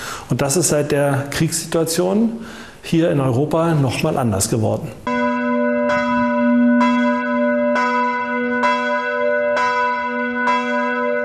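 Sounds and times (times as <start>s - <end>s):
speech: 0.3s - 5.1s
church bells ringing: 5.0s - 11.2s.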